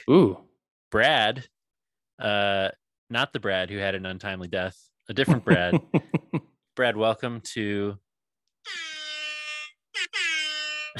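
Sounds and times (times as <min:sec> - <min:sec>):
speech: 0:00.0 - 0:01.6, 0:02.2 - 0:08.0, 0:08.6 - 0:09.0
laughter: 0:05.2 - 0:06.4
air horn sound effect: 0:08.7 - 0:10.9.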